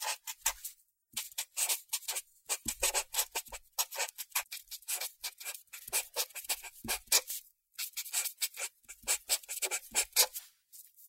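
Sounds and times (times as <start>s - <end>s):
colored pen scribbling on paper: 0.0s - 0.6s, 1.2s - 10.4s.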